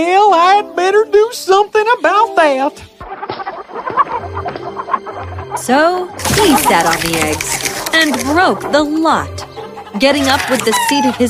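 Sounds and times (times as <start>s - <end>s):
speech: 0.0s - 2.9s, 5.6s - 11.2s
hen clucking: 2.9s - 11.2s.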